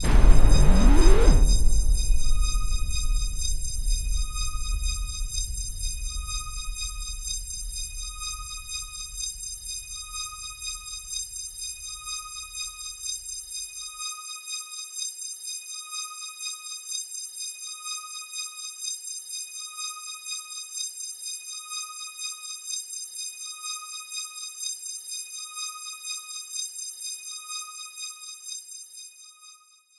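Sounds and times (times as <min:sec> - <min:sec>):
cinematic solemn disturbance boom: 0:00.0 - 0:11.2.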